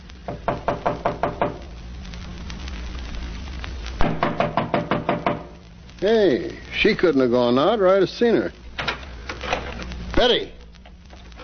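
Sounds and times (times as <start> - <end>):
knocking on a door: 0.3 - 1.6, 4.0 - 5.5
speech: 6.0 - 8.6, 10.2 - 10.6.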